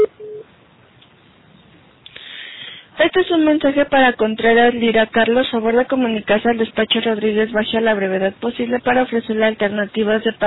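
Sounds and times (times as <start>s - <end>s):
voicemail recording beep tone: 0.0s - 0.4s
telephone line hiss: 0.0s - 0.5s
speech: 3.1s - 10.4s.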